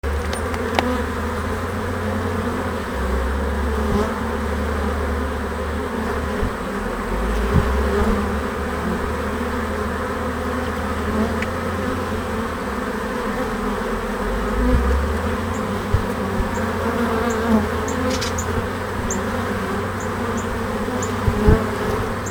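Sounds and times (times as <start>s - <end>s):
bees buzzing in a hive: 0.0s - 22.2s.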